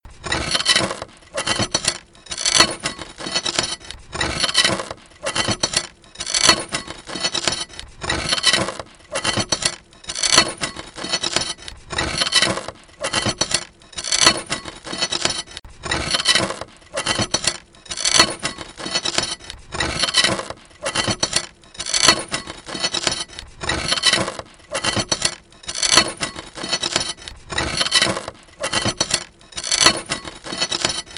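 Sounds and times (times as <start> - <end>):
glass against metal: 0.2 - 31.1.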